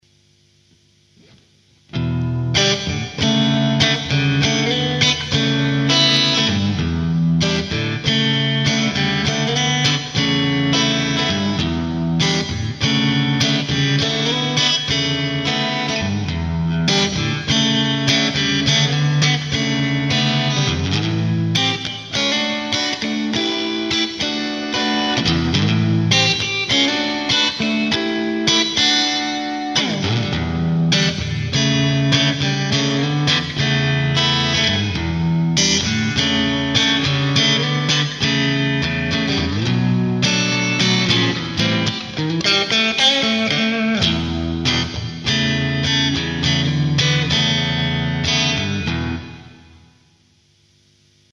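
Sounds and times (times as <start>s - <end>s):
Stratocaster electric guitar: 0.0s - 51.3s.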